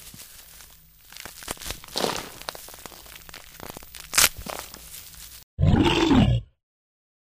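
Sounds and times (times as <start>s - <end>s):
crunching rustling movement: 0.0s - 5.4s
brown bear roaring: 5.6s - 6.5s.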